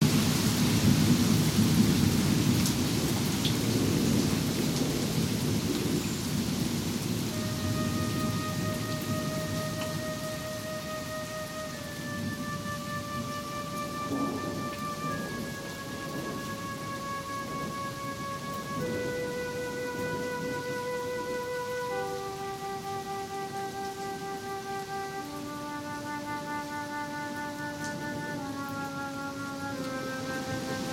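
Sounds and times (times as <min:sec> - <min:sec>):
rain: 0:00.0 - 0:30.9
flute: 0:05.2 - 0:30.9
clarinet: 0:07.0 - 0:30.9.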